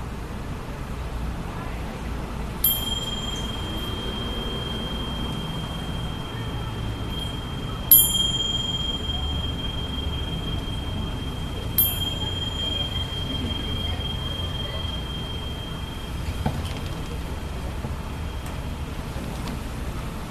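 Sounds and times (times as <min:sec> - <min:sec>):
low steady hum: 0:00.0 - 0:20.2
meditation bell ringing: 0:02.6 - 0:18.9.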